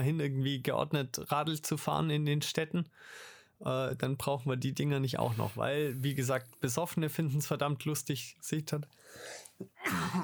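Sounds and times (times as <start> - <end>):
speech: 0.0 - 10.2
short harsh cough: 9.8 - 10.2.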